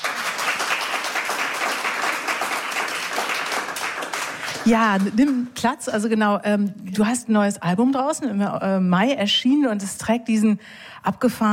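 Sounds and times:
audience applause: 0:00.0 - 0:05.5
speech: 0:04.7 - 0:11.5.

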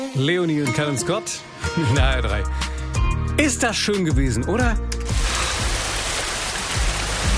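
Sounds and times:
speech: 0:00.2 - 0:02.7, 0:03.4 - 0:05.2
steady rain falling on roofs and streets in Hesse, Germany: 0:05.1 - 0:07.3.

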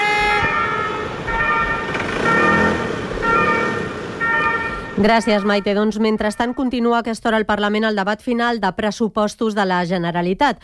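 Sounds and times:
loud ambulance siren wailing in a street: 0:00.0 - 0:06.9
steady traffic rumble: 0:00.0 - 0:08.1
speech: 0:05.0 - 0:10.6.

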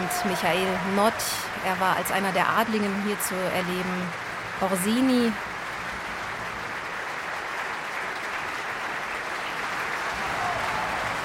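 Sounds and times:
audience applause in a large hall for opera singer: 0:00.0 - 0:11.2
speech: 0:00.2 - 0:05.5.

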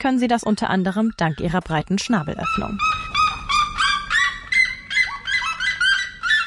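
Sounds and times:
speech: 0:00.0 - 0:03.0
red-legged seriema calling loudly in the Brazilian savanna: 0:02.1 - 0:06.4.

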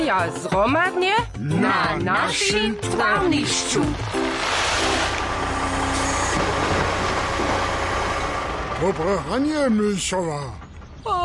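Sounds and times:
speech: 0:00.1 - 0:05.2, 0:08.8 - 0:11.2
large truck engine idling: 0:02.2 - 0:11.2.

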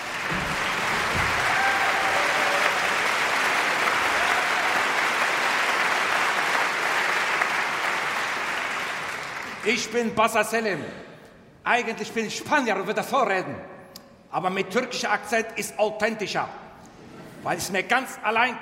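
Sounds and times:
large audience applauding a choir and a ship's band: 0:00.0 - 0:09.8
faint whistles or cheers: 0:00.1 - 0:05.2
speech: 0:09.7 - 0:13.7, 0:14.3 - 0:16.6, 0:17.4 - 0:18.6.

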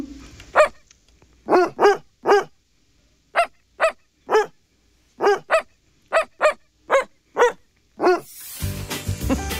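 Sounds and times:
female dog barking a sing-song tune: 0:00.5 - 0:00.8, 0:01.5 - 0:02.6, 0:03.4 - 0:04.6, 0:05.2 - 0:08.3.

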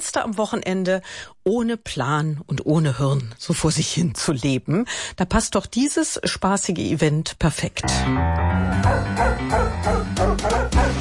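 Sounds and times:
speech: 0:00.1 - 0:11.0
dachshunds barking at a dog race: 0:08.8 - 0:11.0.

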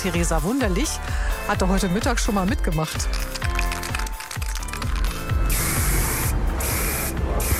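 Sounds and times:
speech: 0:00.0 - 0:03.4
graffiti spray paint aerosol can spraying: 0:03.0 - 0:07.5.

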